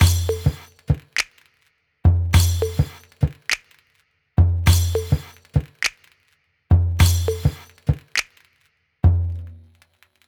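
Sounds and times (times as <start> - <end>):
tom tom percussion loop: 0.0 - 9.8.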